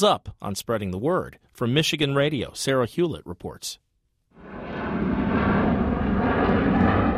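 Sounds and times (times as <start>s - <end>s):
speech: 0.0s - 3.8s
airplane engine roaring at Detroit Metro Airport in Michigan: 4.4s - 7.1s.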